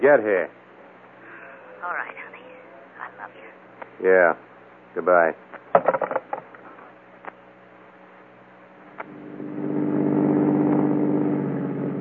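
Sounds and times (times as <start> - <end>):
speech: 0.0 - 0.6, 3.2 - 6.2
sharp knocks: 5.7 - 6.6
car engine humming while driving: 8.8 - 11.9.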